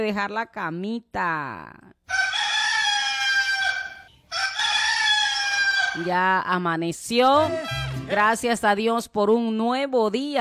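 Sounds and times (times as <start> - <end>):
speech: 0.0 - 2.2, 6.0 - 10.3
rooster crowing at dawn: 2.1 - 6.1, 7.4 - 8.1.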